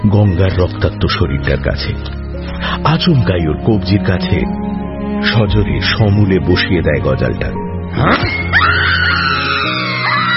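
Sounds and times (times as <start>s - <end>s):
speech: 0.1s - 8.4s
woman screaming in pain: 8.2s - 10.3s.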